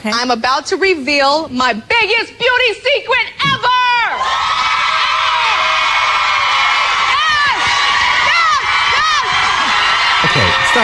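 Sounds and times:
speech: 0.0 - 3.7
television studio audience screaming and cheering: 4.0 - 10.8.

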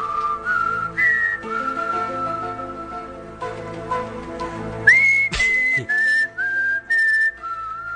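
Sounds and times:
person whistling a slow eerie tune: 0.0 - 3.2, 4.8 - 7.9
soft instrumental backing music: 0.0 - 7.9.

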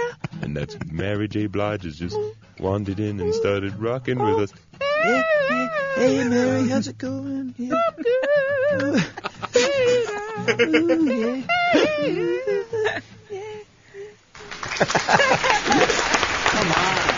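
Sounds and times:
laughter: 0.1 - 1.1, 7.8 - 13.1, 14.4 - 17.1
speech: 0.6 - 9.2, 10.5 - 13.2, 14.6 - 15.9
high wavering vocal sounds: 1.9 - 13.6
live audience applause: 14.4 - 17.1.

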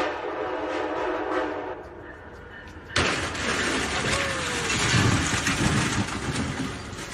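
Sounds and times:
train horn: 0.0 - 2.1
train rumbling: 0.0 - 7.1
train crushing a robot delivery vehicle with clattering grinding noise: 3.0 - 7.1.

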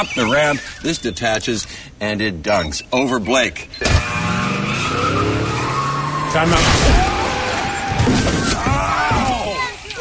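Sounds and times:
Kia Optima tyres screeching in a skid on a runway: 0.0 - 1.4, 2.9 - 9.7
speech: 0.0 - 4.4, 6.3 - 7.1
Kia Optima car engine roaring at full speed down a runway: 3.8 - 8.1.

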